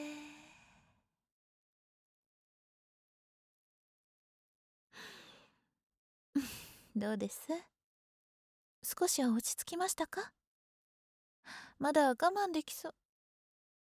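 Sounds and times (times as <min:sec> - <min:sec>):
slow deep breathing: 0:00.0 - 0:01.0, 0:05.0 - 0:05.6
speech: 0:06.4 - 0:07.7, 0:08.8 - 0:10.4, 0:11.4 - 0:13.0.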